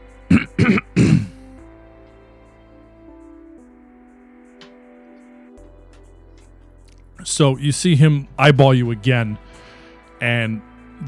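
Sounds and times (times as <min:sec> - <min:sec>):
man loudly clearing his throat: 0:00.3 - 0:01.4
speech: 0:07.4 - 0:09.6, 0:10.2 - 0:11.0.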